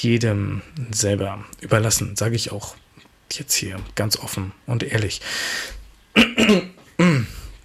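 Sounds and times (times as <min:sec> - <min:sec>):
speech: 0:00.0 - 0:07.3
person coughing: 0:06.2 - 0:07.5.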